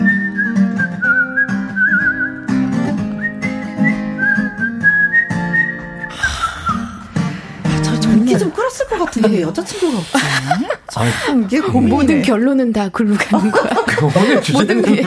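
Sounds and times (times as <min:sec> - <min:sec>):
man whistling a wavering melody: 0:00.0 - 0:07.0
steady instrumental backing music: 0:00.0 - 0:10.7
laughter: 0:08.1 - 0:12.3, 0:13.1 - 0:15.0
speech: 0:08.8 - 0:15.0.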